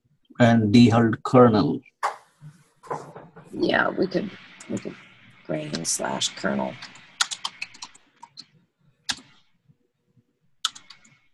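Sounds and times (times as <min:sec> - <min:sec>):
speech: 0:00.4 - 0:01.9, 0:03.5 - 0:07.0
typing on a computer keyboard: 0:06.8 - 0:08.4, 0:10.6 - 0:11.2.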